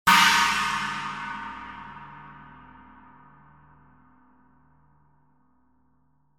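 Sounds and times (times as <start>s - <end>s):
19in China cymbal: 0.1s - 3.5s.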